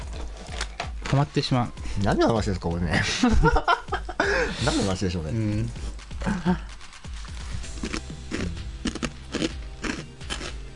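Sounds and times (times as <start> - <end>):
speech: 1.1 - 6.6
laughter: 2.9 - 4.9
crunching of crisp potato stick snacks: 6.2 - 10.7.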